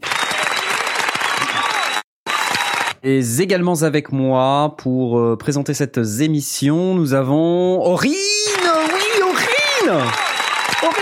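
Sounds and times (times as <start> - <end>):
crowd clapping: 0.0 - 3.0, 8.2 - 11.0
speech: 3.0 - 8.4, 9.8 - 11.0.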